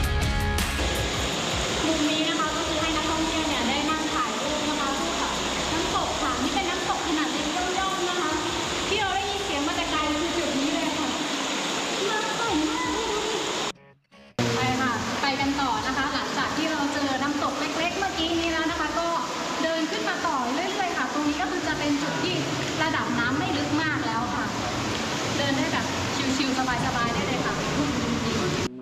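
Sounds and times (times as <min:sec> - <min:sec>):
small tier of a cascading waterfall rushing and splashing: 0:00.1 - 0:13.7, 0:14.4 - 0:28.7.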